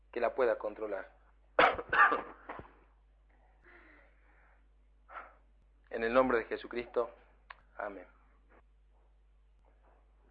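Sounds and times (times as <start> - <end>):
speech: 0.2 - 1.2, 2.1 - 2.4, 5.9 - 7.2, 7.8 - 8.2
person coughing with a persistent cough: 1.6 - 2.6.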